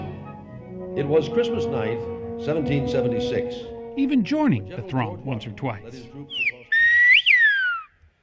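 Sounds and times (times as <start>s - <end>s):
speech: 1.0s - 6.5s
long loud whistle of a whistled language from the Canary Islands: 6.3s - 8.0s.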